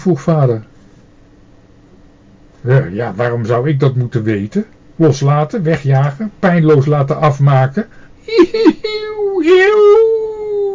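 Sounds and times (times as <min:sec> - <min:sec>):
speech: 0:00.0 - 0:00.7, 0:02.6 - 0:10.2
human voice imitating a stray dog's whining howl: 0:09.0 - 0:10.7.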